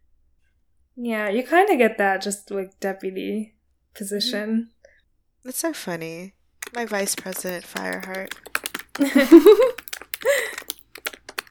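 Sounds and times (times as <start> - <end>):
speech: 1.0 - 4.8, 5.4 - 10.7
fingers typing rapidly on a computer keyboard: 6.6 - 11.5
short bursts of laughter: 9.0 - 10.6.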